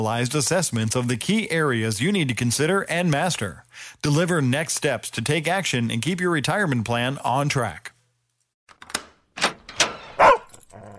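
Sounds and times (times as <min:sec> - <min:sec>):
speech: 0:00.0 - 0:07.9
dog barking at its owner arriving home: 0:10.2 - 0:10.6.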